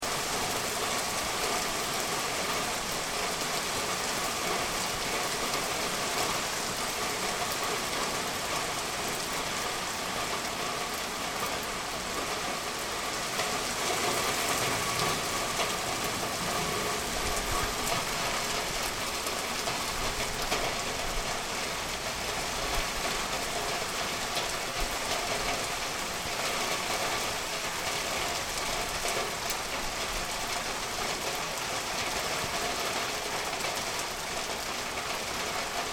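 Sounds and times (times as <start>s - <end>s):
monsoon rain downtown: 0.0s - 35.9s.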